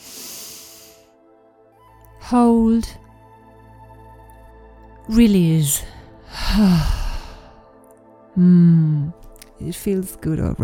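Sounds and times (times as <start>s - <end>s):
deep breath in through the nose: 0.0s - 1.2s
speech: 2.3s - 3.0s, 5.1s - 7.0s, 8.4s - 10.6s.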